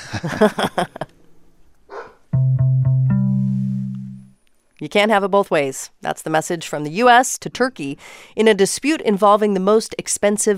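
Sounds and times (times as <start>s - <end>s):
speech: 0.1s - 1.0s, 4.8s - 10.5s
dog barking: 1.9s - 2.2s
sustained musical tone: 2.4s - 4.4s.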